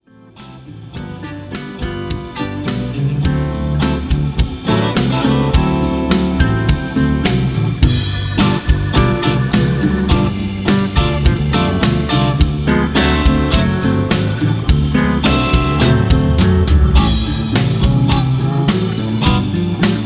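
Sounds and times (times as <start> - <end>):
music piece in D: 0.0 - 20.0.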